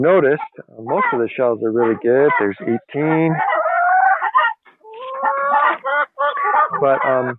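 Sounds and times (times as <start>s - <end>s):
speech: 0.0s - 3.6s, 6.8s - 7.3s
older hens clucking in a coop during egg collection: 0.0s - 7.3s.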